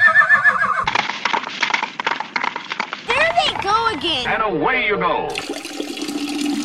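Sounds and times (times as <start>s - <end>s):
horse giving a loud wavering neigh: 0.0s - 1.0s
horse hooves in a quick steady clip-clop: 0.1s - 4.1s
speech: 3.9s - 5.6s.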